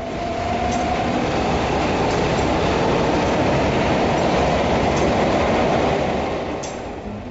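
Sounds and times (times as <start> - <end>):
subway train rumbling at steady speed: 0.0 - 7.3.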